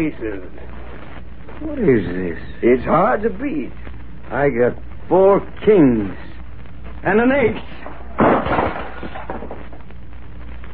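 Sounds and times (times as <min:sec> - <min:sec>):
speech: 0:00.0 - 0:00.9, 0:01.6 - 0:06.3, 0:07.0 - 0:09.2
glass breaking: 0:07.8 - 0:09.8
debris rattling: 0:07.8 - 0:09.9
oil lamp crashing to the floor: 0:07.8 - 0:09.9.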